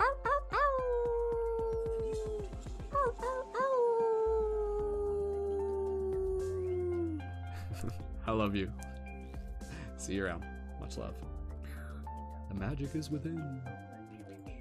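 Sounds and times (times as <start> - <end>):
person imitating wolf howls: 0.0 - 7.2
speech: 8.3 - 8.9, 10.1 - 11.4, 12.6 - 13.8.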